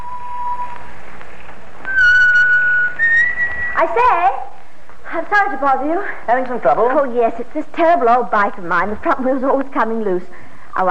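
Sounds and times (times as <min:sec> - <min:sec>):
man whistling a tune while riding home to Leicester in the evening: 0:00.0 - 0:00.9, 0:01.9 - 0:03.8
speech: 0:03.8 - 0:04.4, 0:05.1 - 0:10.8.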